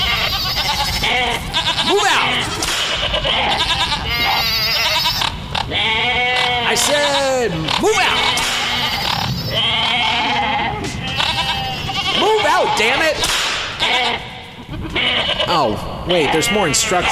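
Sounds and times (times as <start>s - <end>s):
goats bleating: 0.0s - 17.1s
man shouting: 1.8s - 2.5s, 6.6s - 8.4s, 12.2s - 13.2s
speech: 12.5s - 14.2s, 15.0s - 17.1s.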